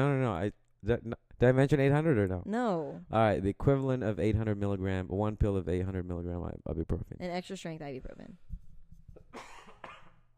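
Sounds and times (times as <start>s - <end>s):
speech: 0.0s - 8.5s
sick person coughing harshly: 9.2s - 10.3s.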